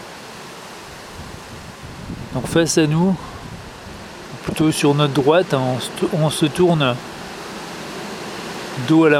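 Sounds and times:
strong wind roaring outdoors: 0:00.8 - 0:07.7
speech: 0:02.3 - 0:03.3, 0:04.6 - 0:07.1, 0:08.8 - 0:09.1.

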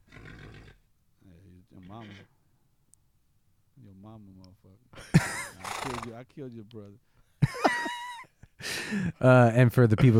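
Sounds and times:
horse neighing: 0:00.0 - 0:00.8, 0:01.7 - 0:02.4, 0:05.4 - 0:06.2
horse snorting: 0:00.0 - 0:00.9, 0:01.7 - 0:02.3, 0:05.5 - 0:06.2
speech: 0:01.9 - 0:02.4, 0:03.8 - 0:07.1, 0:08.9 - 0:10.1
laughter: 0:04.9 - 0:06.1, 0:07.4 - 0:09.3.

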